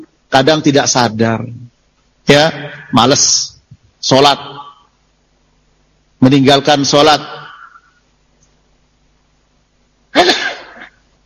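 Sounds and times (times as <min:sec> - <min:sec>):
speech: 0:00.4 - 0:04.6, 0:06.2 - 0:07.4
person sneezing during an Islamic religious lecture: 0:10.1 - 0:11.0.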